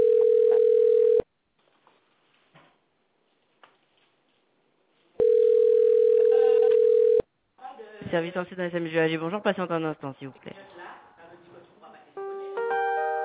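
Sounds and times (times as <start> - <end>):
telephone dial tone: 0.0 - 1.2, 5.2 - 7.2
speech: 8.1 - 10.8.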